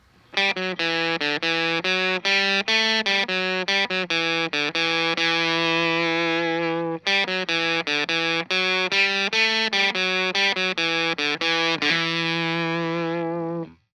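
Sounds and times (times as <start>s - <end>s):
electric guitar through a fuzz pedal and tube amp: 0.3s - 13.8s.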